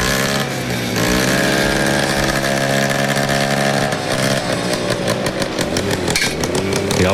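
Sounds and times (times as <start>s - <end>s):
rally car engines revving at a rally event in Ennetmoos: 0.0s - 7.1s.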